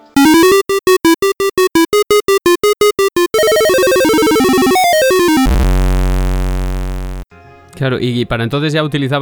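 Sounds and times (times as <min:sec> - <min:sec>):
single-voice square-wave chiptune melody from a one-channel soundtrack: 0:00.0 - 0:07.2
speech: 0:07.9 - 0:09.2.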